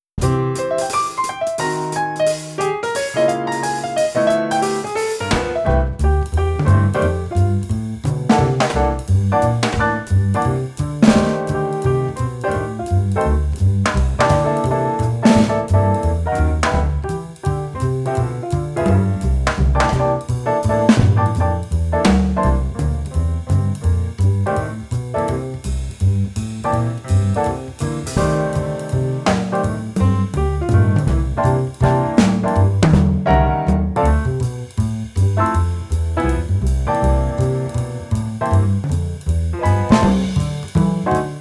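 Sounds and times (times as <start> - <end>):
cool blues music without saxophone: 0.0 - 41.4.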